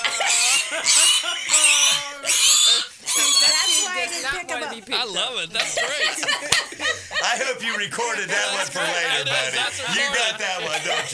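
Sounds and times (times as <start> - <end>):
pig squealing and grunting: 0.0 - 4.2
laughter: 0.0 - 11.1
speech: 7.6 - 11.1.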